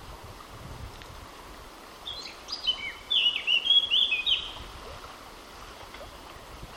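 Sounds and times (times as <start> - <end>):
Eurasian blackcap Sylvia atricapilla singing: 2.1 - 4.6.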